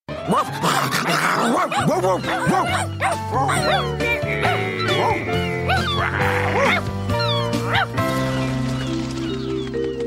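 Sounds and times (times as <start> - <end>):
steady bed of music: 0.1 - 10.0
voice actor imitating a small cartoon dog yipping and barking: 0.2 - 6.9.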